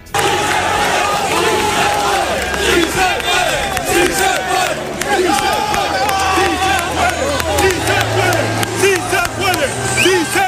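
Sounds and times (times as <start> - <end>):
travelling football supporters in Almería roaring and chanting after a match: 0.0 - 10.4.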